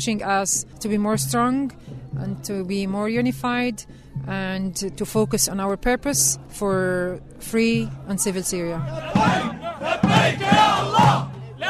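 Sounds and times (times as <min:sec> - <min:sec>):
speech: 0:00.0 - 0:11.1
large crowd shouting and chanting at a rally: 0:07.6 - 0:11.6.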